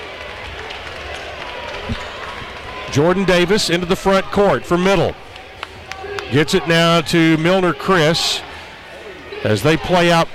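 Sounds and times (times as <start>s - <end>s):
speech: 2.9s - 5.2s, 6.3s - 8.5s, 9.4s - 10.3s
basketball arena crowd cheering and chatter: 5.6s - 7.0s.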